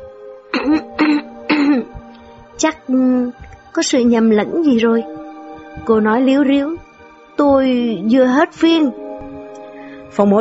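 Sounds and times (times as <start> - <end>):
steady low tone: 0.0 - 10.3
woman clearing her throat: 0.5 - 2.0
speech: 2.6 - 5.2, 5.8 - 6.8, 7.4 - 9.0, 10.1 - 10.3.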